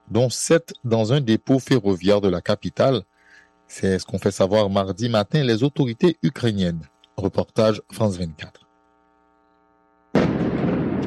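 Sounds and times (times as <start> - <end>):
speech: 0.1 - 3.1, 3.7 - 8.6
explosion in the night sky during an air attack: 10.2 - 11.0.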